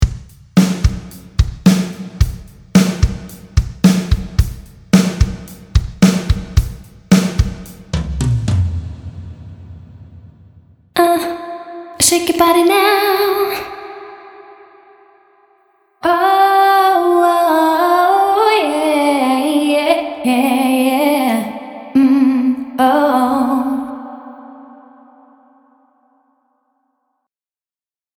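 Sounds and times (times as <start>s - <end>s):
modern drums: 0.0s - 10.8s
vocals: 11.0s - 15.1s, 16.0s - 25.5s.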